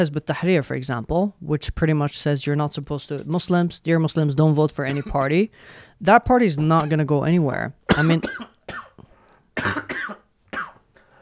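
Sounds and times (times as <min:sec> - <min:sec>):
speech: 0:00.0 - 0:08.8, 0:09.6 - 0:10.2
man giving a harsh deep cough: 0:04.9 - 0:05.3, 0:07.9 - 0:09.0, 0:09.6 - 0:10.8.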